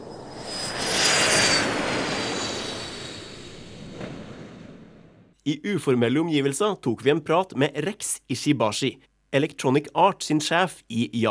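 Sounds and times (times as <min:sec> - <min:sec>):
jet airplane engine roaring: 0:00.0 - 0:05.2
speech: 0:05.5 - 0:11.2.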